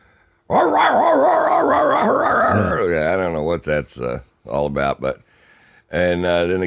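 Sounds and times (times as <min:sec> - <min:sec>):
person imitating excited drug-sniffing dogs yipping and whining: 0:00.5 - 0:02.9
speech: 0:03.6 - 0:05.3, 0:05.9 - 0:06.6.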